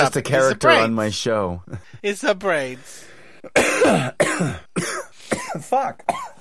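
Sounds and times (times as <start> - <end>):
speech: 0.0 - 6.3
harsh raspy coughs: 3.5 - 6.3.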